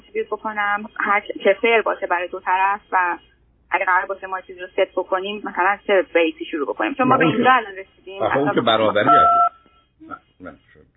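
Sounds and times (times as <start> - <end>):
speech: 0.2 - 9.4, 10.0 - 10.9
telephone keypad tone set off by a phone pressed against a face: 9.1 - 9.6.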